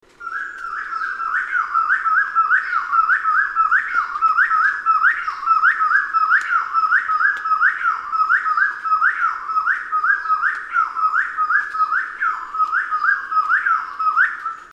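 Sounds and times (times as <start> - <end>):
Spotted Wood-Quail calling: 0.2 - 14.7.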